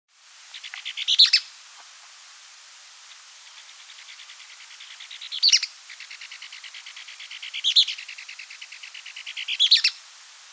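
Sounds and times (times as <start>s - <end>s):
bird song: 0.5s - 1.5s, 3.1s - 10.0s.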